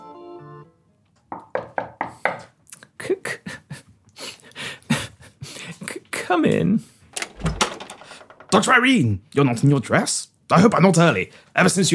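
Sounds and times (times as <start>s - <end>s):
knocking on a door: 1.3s - 2.5s, 7.3s - 8.6s
speech: 6.3s - 7.0s, 8.6s - 11.9s.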